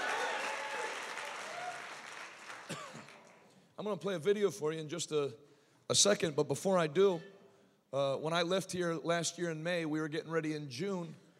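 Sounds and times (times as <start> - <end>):
person cheering: 0.0 - 2.1
large crowd clapping: 0.0 - 3.5
speech: 3.8 - 11.2.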